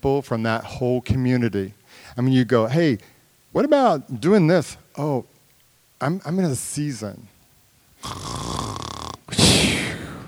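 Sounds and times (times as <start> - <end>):
speech: 0.0 - 5.3, 6.0 - 7.3, 8.0 - 8.5
person imitating a snore: 8.0 - 10.2.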